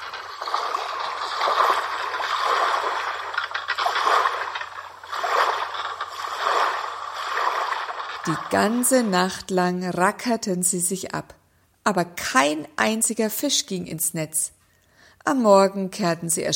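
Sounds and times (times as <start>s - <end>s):
lake water sloshing and lapping against a boat: 0.0s - 9.5s
speech: 8.2s - 14.6s, 15.2s - 16.5s.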